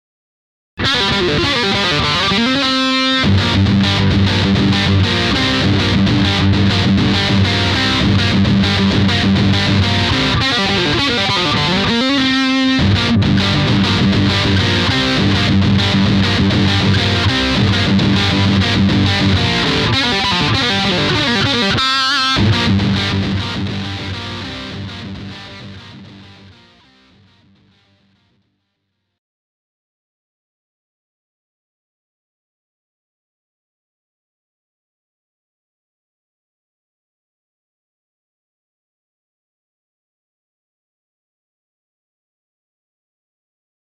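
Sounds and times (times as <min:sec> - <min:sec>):
classic rock guitar riff: 0:00.8 - 0:28.4.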